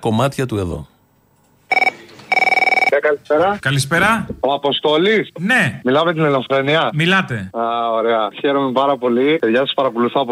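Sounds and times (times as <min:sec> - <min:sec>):
speech: 0:00.0 - 0:00.9, 0:03.0 - 0:10.2
telephone ringing with buzzing electronic trills for incoming call: 0:01.7 - 0:03.0.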